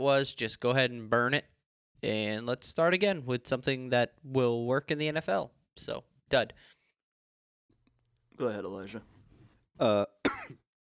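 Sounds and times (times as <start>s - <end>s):
speech: 0.0s - 6.8s, 8.4s - 9.1s, 9.8s - 10.6s
person coughing: 10.2s - 10.6s.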